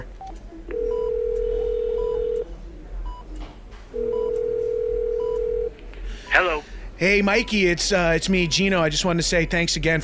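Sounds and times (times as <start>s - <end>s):
steady low telephone tone as a call is placed: 0.7s - 2.4s, 4.0s - 5.7s
speech: 6.5s - 10.0s.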